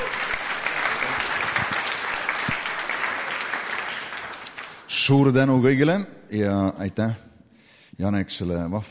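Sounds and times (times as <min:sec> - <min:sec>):
audience applause welcoming a speaker: 0:00.0 - 0:05.1
speech: 0:04.9 - 0:07.3, 0:08.0 - 0:08.9.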